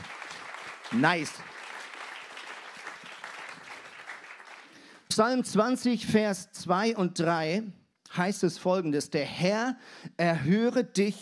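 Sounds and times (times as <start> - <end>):
crowd clapping together in applause: 0.0 - 5.5
speech: 0.9 - 1.6, 5.2 - 11.2.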